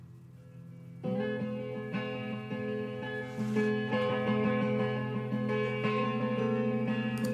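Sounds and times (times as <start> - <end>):
song excerpt with sustained ringing electric guitar chords: 0.0 - 7.3.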